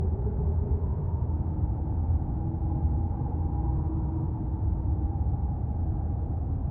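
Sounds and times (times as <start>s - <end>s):
cold howling wind in an underground cave: 0.0s - 6.6s.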